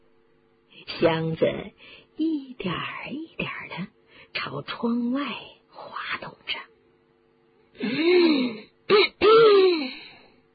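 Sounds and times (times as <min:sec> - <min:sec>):
speech: 0:01.0 - 0:05.6, 0:07.8 - 0:09.6
man coughing and clearing his throat, imitated by a person: 0:07.8 - 0:09.9.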